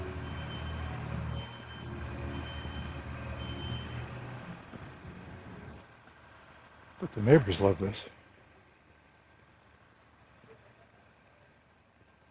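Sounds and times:
genie lift motion alarm beeping: 0.0s - 4.3s
genie lift low engine rumble while rolling slowly: 0.0s - 12.2s
speech: 7.0s - 8.2s.

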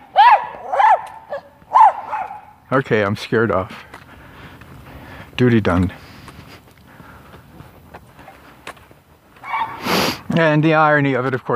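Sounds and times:
dog barking: 0.1s - 2.6s, 9.4s - 9.8s
speech: 2.7s - 4.0s, 5.4s - 6.0s, 10.4s - 11.5s.

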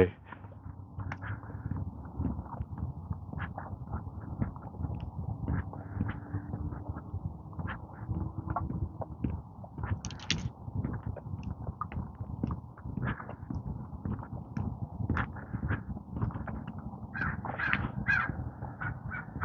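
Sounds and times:
speech: 0.0s - 0.2s
steady outdoor rumble: 0.0s - 19.4s
flock of crows cawing: 17.2s - 18.4s.

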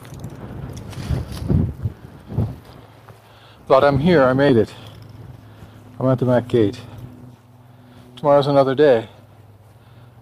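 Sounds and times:
strong wind buffeting the microphone: 0.0s - 6.5s
speech: 3.7s - 4.9s, 6.0s - 6.9s, 8.2s - 9.2s.

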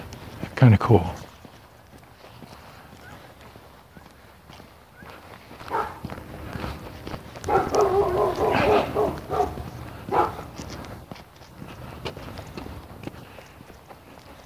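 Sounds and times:
footsteps of a person walking a black Labrador scuffing: 0.0s - 14.4s
speech: 0.6s - 1.2s
black Labrador vocalizing: 7.5s - 10.5s.

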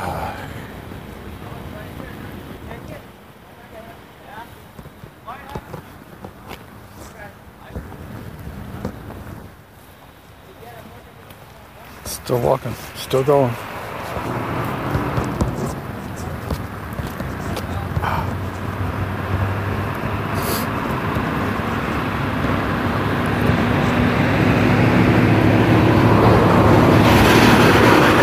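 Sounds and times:
outdoor road noise: 0.0s - 28.2s
speech: 12.3s - 13.7s
UPS delivery truck engine droning on a neighborhood street: 12.6s - 28.2s.

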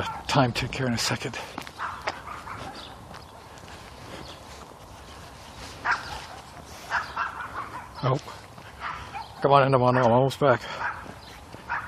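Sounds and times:
dog barking: 0.0s - 0.3s, 1.8s - 3.0s, 5.8s - 8.2s, 8.8s - 11.8s
speech: 0.0s - 1.7s, 8.0s - 8.4s, 9.4s - 10.8s
outdoor noise: 0.0s - 11.8s.

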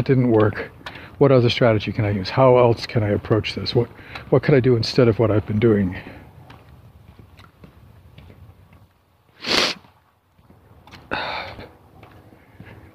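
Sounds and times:
speech: 0.0s - 6.2s
person sniffing: 9.4s - 9.8s.

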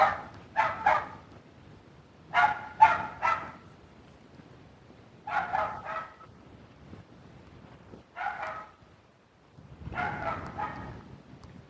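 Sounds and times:
small dog yapping: 2.4s - 3.6s, 5.3s - 6.2s, 8.2s - 8.8s, 9.9s - 11.0s.

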